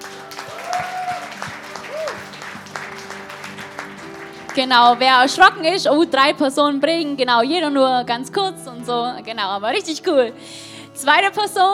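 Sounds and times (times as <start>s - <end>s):
crowd applauding: 0.0s - 5.7s
speech: 4.6s - 11.7s.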